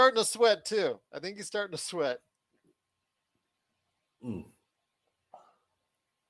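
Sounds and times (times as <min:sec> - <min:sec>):
speech: 0:00.0 - 0:02.3, 0:04.2 - 0:04.6
man hiccuping: 0:04.2 - 0:04.6.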